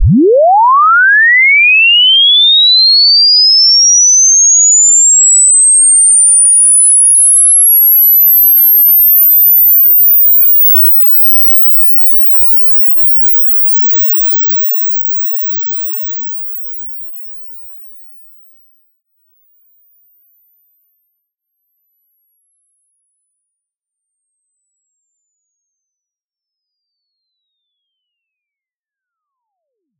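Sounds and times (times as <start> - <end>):
frequency sweep tone from 1 Hz to 44000 Hz: 0.0 - 15.8.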